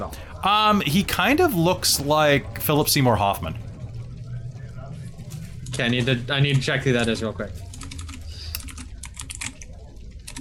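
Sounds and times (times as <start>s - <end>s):
speech: 0.0s - 3.6s, 5.7s - 7.6s
rapid typing on a computer keyboard: 7.7s - 10.3s.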